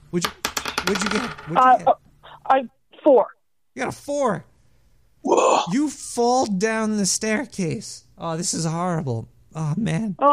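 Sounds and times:
speech: 0.1 - 4.5, 5.2 - 10.3
dice clattering across a hard tabletop: 0.2 - 1.6.

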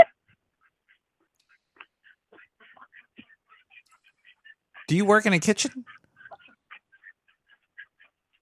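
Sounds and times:
flock of ducks quacking: 0.6 - 8.4
speech: 4.9 - 6.0.

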